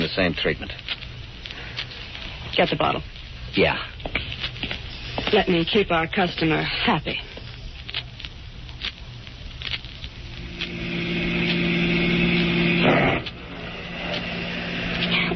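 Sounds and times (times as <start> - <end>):
speech: 0.0 - 1.0, 2.5 - 4.2, 5.3 - 7.3
steady rain pattering: 0.0 - 15.3
car engine humming: 10.0 - 15.3.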